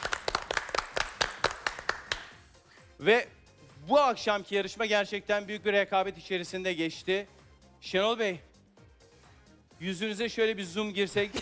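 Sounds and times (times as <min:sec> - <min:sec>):
TV quiz competition audience applause: 0:00.0 - 0:02.3
speech: 0:03.0 - 0:08.5, 0:09.8 - 0:11.4.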